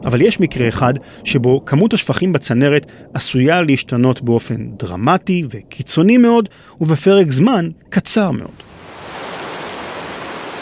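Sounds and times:
speech: 0.0s - 8.8s
rain pouring down: 8.5s - 10.6s.

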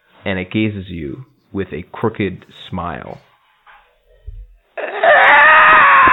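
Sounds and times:
speech: 0.2s - 3.3s
creature cry: 4.8s - 6.1s.

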